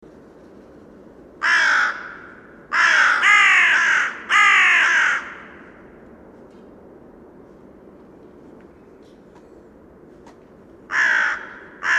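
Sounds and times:
carrion crow Corvus corone giving hoarse drawn-out caws: 1.4 - 5.8, 10.9 - 11.9.

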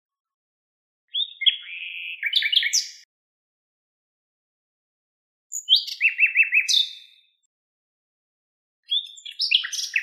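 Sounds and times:
Common nightingale Luscinia megarhynchos song mixing whistled and chattering notes: 1.1 - 3.1, 5.5 - 7.4, 8.8 - 10.0.

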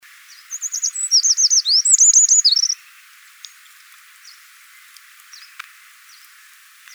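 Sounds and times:
Eurasian wren twittering: 0.1 - 6.9
faint ticks: 3.3 - 6.9.

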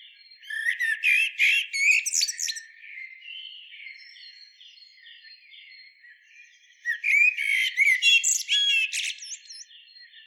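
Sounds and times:
Common blackbird warbling and twittering: 0.3 - 4.4, 6.8 - 10.2.

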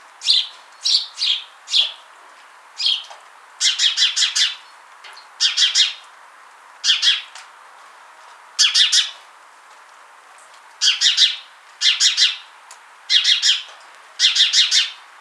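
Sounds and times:
house sparrow Passer domesticus chirping: 0.2 - 2.0, 2.8 - 4.6, 5.4 - 6.0, 6.9 - 7.3, 10.8 - 12.4, 13.1 - 13.6, 14.2 - 14.9.

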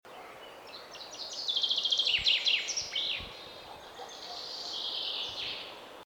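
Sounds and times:
common chaffinch Fringilla coelebs singing: 0.1 - 5.9.

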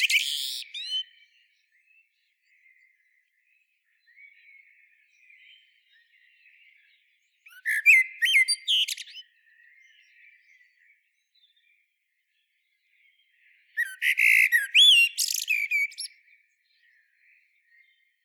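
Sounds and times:
common blackbird Turdus merula whistles: 0.0 - 1.0, 7.5 - 9.2, 13.8 - 16.1
common blackbird Turdus merula twittering: 0.0 - 1.2, 7.5 - 10.1, 13.7 - 16.1.

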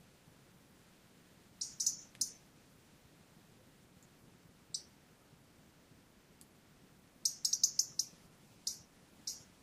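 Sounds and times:
quiet low hiss: 0.0 - 9.6
Erithacus rubecula European robin giving sharp high ticking calls: 1.6 - 2.4, 4.7 - 5.0, 7.2 - 9.5.

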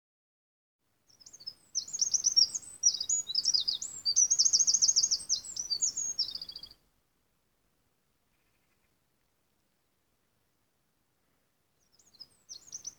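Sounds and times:
Eurasian wren Troglodytes troglodytes singing: 1.0 - 6.8, 11.8 - 12.9.

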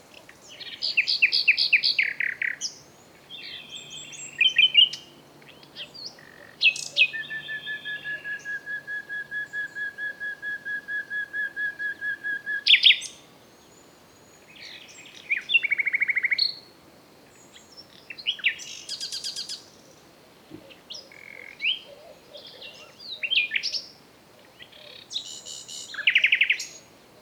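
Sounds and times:
Common nightingale Luscinia megarhynchos singing: 0.1 - 16.7, 17.3 - 27.2.

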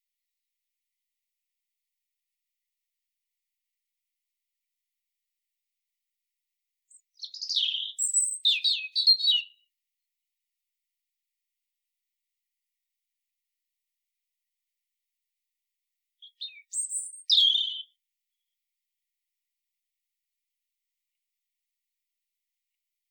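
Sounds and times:
Erithacus rubecula European robin singing warbling phrases: 6.9 - 9.7, 16.2 - 18.0.

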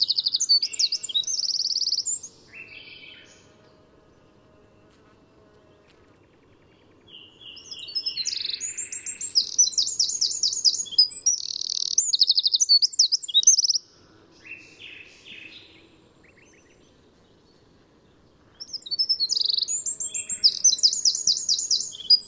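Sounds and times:
Eurasian wren Troglodytes troglodytes song bursts: 0.0 - 3.0, 7.5 - 14.6, 18.6 - 22.2.

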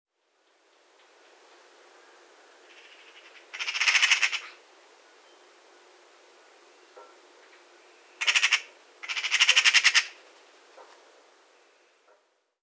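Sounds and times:
Eurasian magpie Pica pica giving rattling chatter calls: 2.6 - 4.6, 8.2 - 10.2.

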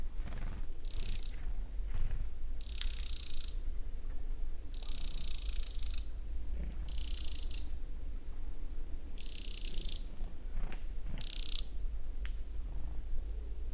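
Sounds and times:
low background noise: 0.0 - 13.7
Eurasian wren Troglodytes troglodytes calling with harsh buzzy high rattles: 0.8 - 1.5, 2.6 - 3.6, 4.7 - 6.2, 6.8 - 7.8, 9.2 - 10.1, 11.2 - 11.8.

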